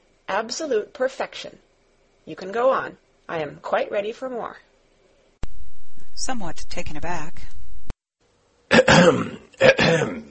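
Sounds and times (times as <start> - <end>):
speech: 0.3 - 1.7, 2.3 - 4.7, 6.2 - 7.5, 9.0 - 10.2
person coughing: 8.7 - 10.2.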